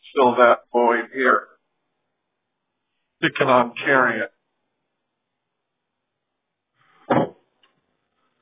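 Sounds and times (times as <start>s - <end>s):
speech: 0.2s - 1.5s, 3.2s - 4.4s
fuel can knocking around in truck bed: 7.1s - 7.8s.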